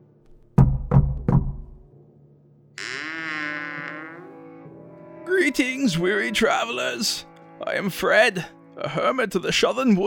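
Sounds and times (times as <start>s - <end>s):
hollow knocks on the wooden door of a hut: 0.4s - 1.9s
speech: 5.5s - 10.0s.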